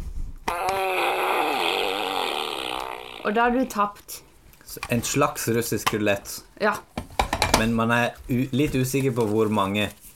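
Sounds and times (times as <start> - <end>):
large green squeezable toy making fart noise: 0.4 - 3.5
speech: 3.2 - 6.9, 7.6 - 10.0.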